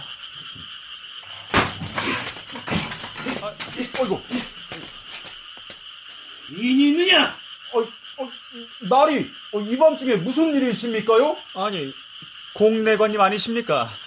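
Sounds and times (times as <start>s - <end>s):
steady chorus of frogs croaking: 0.0s - 14.0s
loud clattering thump: 1.5s - 4.9s
man exclaiming and muttering: 3.2s - 4.8s
speech: 3.5s - 4.5s, 6.5s - 8.0s, 8.6s - 12.0s, 12.6s - 14.0s.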